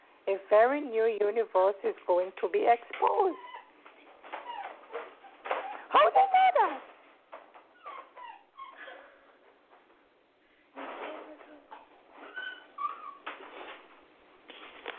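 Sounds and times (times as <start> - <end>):
speech: 0.3 - 3.6
puppy whining excitedly at a cat: 3.2 - 6.3, 7.5 - 9.3, 10.8 - 13.4
puppy squealing in short rising squeals: 3.3 - 6.0, 7.7 - 9.0, 12.2 - 13.3.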